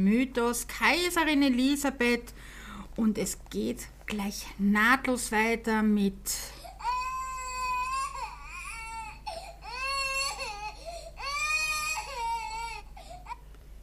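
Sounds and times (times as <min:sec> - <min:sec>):
speech: 0:00.0 - 0:06.6
baby crying loudly: 0:06.8 - 0:13.4.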